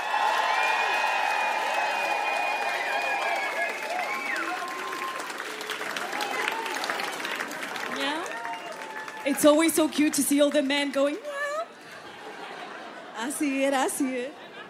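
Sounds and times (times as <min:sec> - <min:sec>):
concert crowd applauding and cheering: 0:00.0 - 0:11.6
high whistles and whoops from a concert crowd: 0:00.5 - 0:05.4
speech: 0:09.3 - 0:11.3, 0:13.2 - 0:14.4
laughter: 0:11.7 - 0:14.6.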